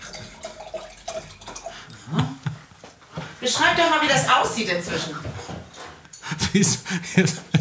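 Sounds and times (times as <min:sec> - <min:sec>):
wine pouring into a glass: 0:00.0 - 0:02.4
speech: 0:03.4 - 0:05.3, 0:06.6 - 0:07.5.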